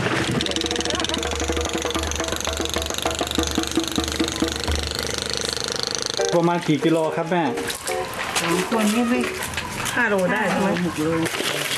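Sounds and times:
vehicle engine being cranked and started: 0:00.0 - 0:07.1
speech: 0:06.3 - 0:07.8, 0:08.4 - 0:09.4, 0:10.0 - 0:11.4.

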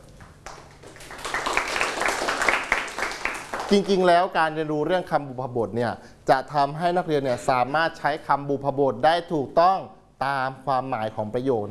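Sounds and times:
group of students applauding: 0:00.4 - 0:04.0
speech: 0:03.7 - 0:11.6.

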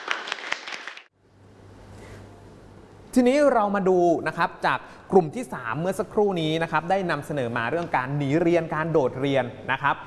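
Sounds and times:
group applause in a classroom after a student presentation: 0:00.0 - 0:01.1
speech: 0:03.1 - 0:10.0.

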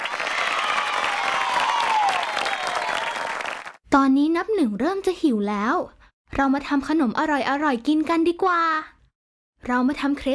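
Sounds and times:
small crowd applauding: 0:00.0 - 0:03.8
speech: 0:04.0 - 0:08.9, 0:09.6 - 0:10.3.

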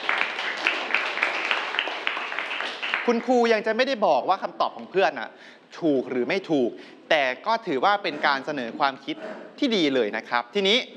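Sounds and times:
classroom students clapping for a classmate: 0:00.0 - 0:03.5
speech: 0:03.1 - 0:10.9.

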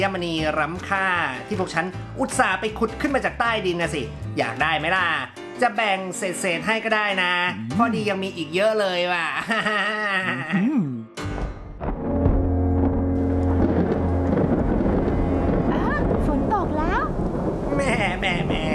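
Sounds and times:
speech: 0:00.0 - 0:10.6
laughter: 0:09.2 - 0:10.8, 0:17.7 - 0:18.7
deep thunder rumbling: 0:11.8 - 0:18.7
loud steady downpour of rain: 0:12.8 - 0:18.7.

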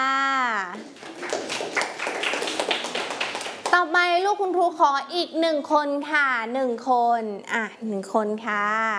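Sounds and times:
small group of schoolchildren clapping for a classmate: 0:00.8 - 0:03.9
speech: 0:04.4 - 0:08.9.

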